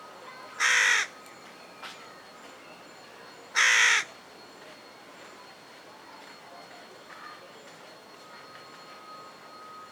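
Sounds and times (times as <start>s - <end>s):
Corvus corone carrion crow cawing: 0.6s - 1.1s, 3.6s - 4.1s.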